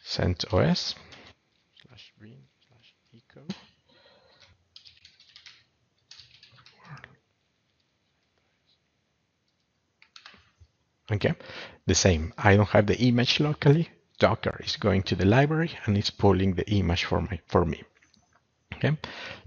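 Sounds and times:
speech: 0.2s - 1.1s, 2.2s - 2.5s, 11.1s - 17.9s, 18.8s - 19.4s
computer keyboard typing: 4.3s - 7.8s, 9.4s - 10.6s.

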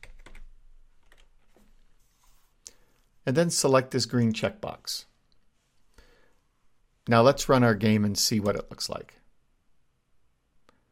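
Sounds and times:
typing on a computer keyboard: 0.0s - 1.6s
speech: 3.3s - 5.1s, 7.1s - 9.2s.

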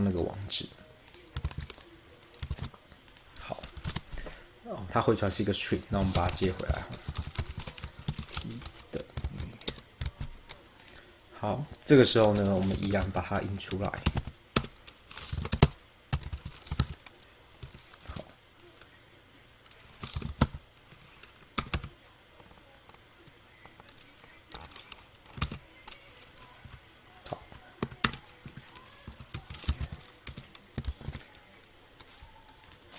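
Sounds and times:
speech: 0.0s - 0.8s, 4.7s - 7.2s, 11.4s - 14.2s
typing program code on a computer keyboard: 1.1s - 2.7s, 6.0s - 10.6s, 12.2s - 18.2s, 19.7s - 21.9s, 23.6s - 32.9s.

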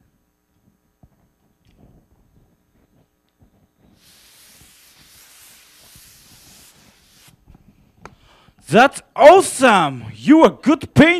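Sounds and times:
aerosol spray can hissing: 3.8s - 7.4s
speech: 8.7s - 11.1s.

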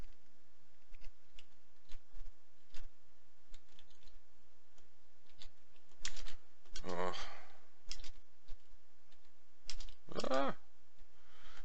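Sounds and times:
computer keyboard typing: 0.8s - 2.9s, 3.5s - 4.2s, 5.2s - 7.0s, 7.9s - 10.4s.

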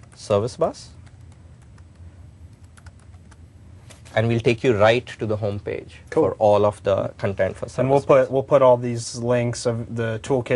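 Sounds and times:
speech: 0.2s - 1.0s, 4.2s - 10.5s
fingers typing on a computer keyboard: 1.0s - 3.4s.

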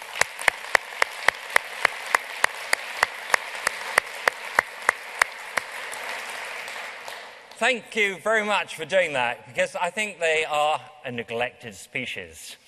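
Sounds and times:
one sharp clapper clapping: 0.0s - 7.6s
room full of people applauding: 0.0s - 7.6s
speech: 7.6s - 12.6s.

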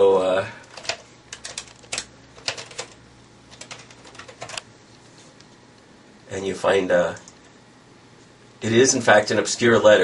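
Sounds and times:
typing on a computer keyboard: 0.7s - 4.7s
speech: 6.4s - 7.3s, 8.6s - 10.0s.

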